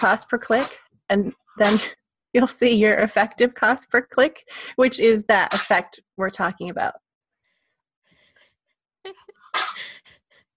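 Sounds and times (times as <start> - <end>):
speech: 0.0 - 7.0, 9.0 - 9.3
cat sneezing: 1.6 - 2.0, 5.5 - 5.8, 9.4 - 9.9.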